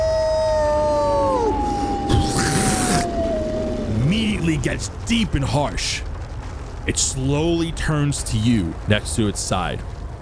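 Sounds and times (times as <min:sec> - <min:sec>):
wolf howling: 0:00.0 - 0:04.8
speech: 0:04.6 - 0:06.1, 0:06.9 - 0:09.9.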